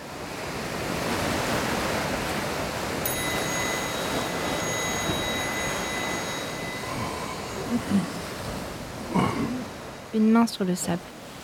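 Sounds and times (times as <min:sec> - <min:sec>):
ocean surf breaking around a tiny island: 0:00.0 - 0:11.4
faint high ringing tone: 0:03.0 - 0:09.8
speech: 0:07.8 - 0:08.2, 0:10.2 - 0:11.2.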